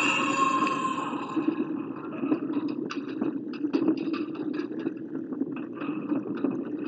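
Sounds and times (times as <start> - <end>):
continuous heavy rumble: 0.0 - 2.8
crackling and rattling bursts: 0.0 - 6.8.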